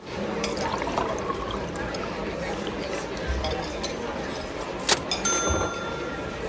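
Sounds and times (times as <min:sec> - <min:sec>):
faint murmur: 0:00.0 - 0:06.4
tea pouring into a cup: 0:00.1 - 0:04.1
china clink: 0:05.1 - 0:06.4.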